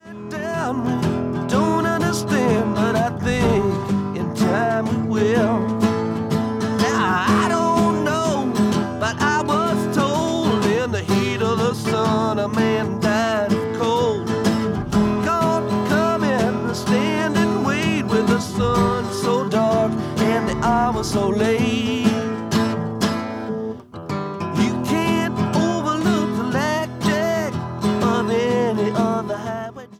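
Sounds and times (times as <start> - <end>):
person singing: 0.0 - 22.6, 24.5 - 29.9
acoustic guitar: 0.0 - 29.9
drums: 3.2 - 4.1, 12.9 - 23.3.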